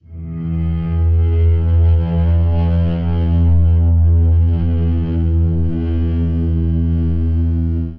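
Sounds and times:
bowed guitar: 0.0s - 7.9s.

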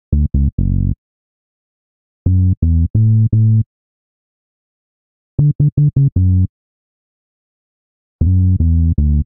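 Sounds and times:
bassline in F sharp minor: 0.0s - 1.0s, 2.3s - 3.7s, 5.4s - 6.5s, 8.2s - 9.2s.

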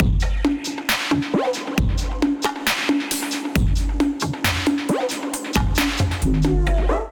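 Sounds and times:
melodic drum kit loop at 135 bpm: 0.0s - 7.0s.

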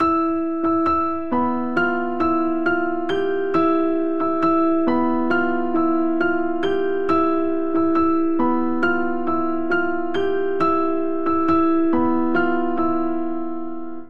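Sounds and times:
grand piano vamp in Phrygian octaves at 68 bpm: 0.0s - 14.0s.

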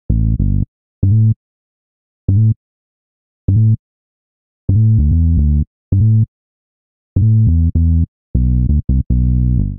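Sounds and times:
bassline in A minor at 85 bpm: 0.1s - 1.4s, 2.3s - 2.6s, 3.5s - 3.8s, 4.7s - 6.3s, 7.2s - 9.7s.

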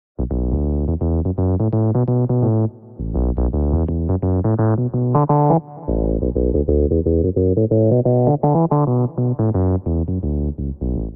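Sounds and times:
piano bassline in D minor at 85 bpm: 0.2s - 11.1s.

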